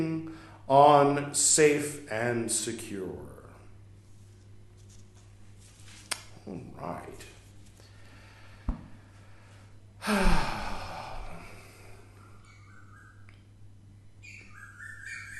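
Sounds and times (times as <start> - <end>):
speech: 0.0 - 3.3, 6.5 - 7.3, 10.0 - 10.7
low steady hum: 0.0 - 15.3
breathy exhale: 7.8 - 12.2
birds chirping outdoors: 11.8 - 15.3.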